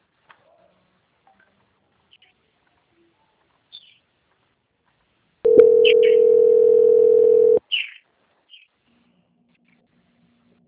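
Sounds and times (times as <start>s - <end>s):
steady telephone tone while a call is being transferred: 5.5s - 7.6s.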